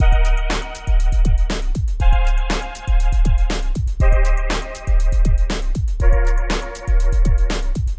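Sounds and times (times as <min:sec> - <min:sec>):
tech music loops: 0:00.0 - 0:07.9.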